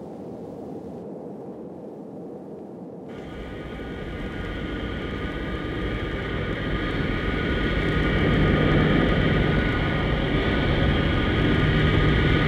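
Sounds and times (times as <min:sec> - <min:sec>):
airplane engine roar on landing approach: 0:03.1 - 0:12.4
whining tonal hum of landing airplane: 0:03.1 - 0:12.4.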